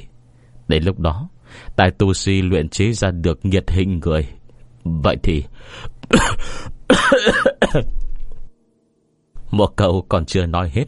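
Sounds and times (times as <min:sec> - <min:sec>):
speech: 0:00.7 - 0:08.0, 0:09.5 - 0:10.8
man coughing: 0:06.1 - 0:08.0.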